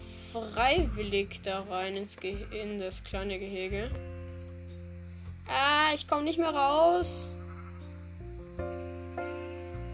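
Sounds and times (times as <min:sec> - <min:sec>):
speech: 0:00.4 - 0:04.2, 0:05.5 - 0:07.4
video game sheep bleating: 0:07.4 - 0:07.9.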